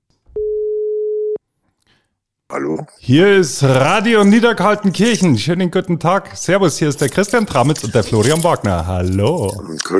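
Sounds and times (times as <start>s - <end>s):
telephone line tone signalling an incoming call: 0.4s - 1.4s
speech: 2.5s - 9.9s.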